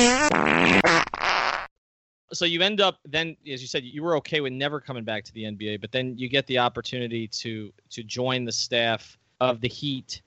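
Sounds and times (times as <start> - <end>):
fart noise: 0.0 - 1.7
speech: 2.4 - 10.2.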